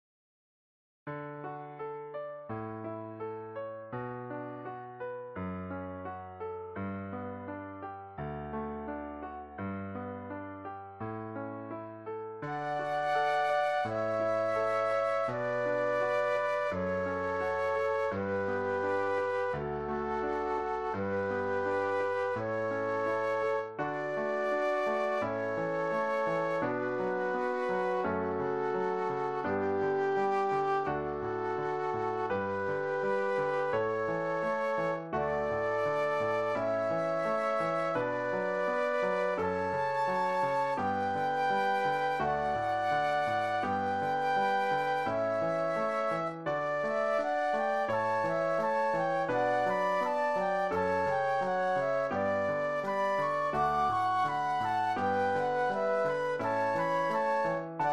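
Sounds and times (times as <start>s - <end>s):
classical piano: 1.1s - 57.9s
classical flute duet: 12.4s - 57.9s.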